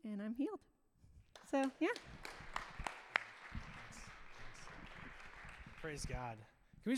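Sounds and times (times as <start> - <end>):
speech: 0.2 - 0.7, 1.5 - 2.3, 5.8 - 6.9
audience applauding at a church service: 1.4 - 6.4.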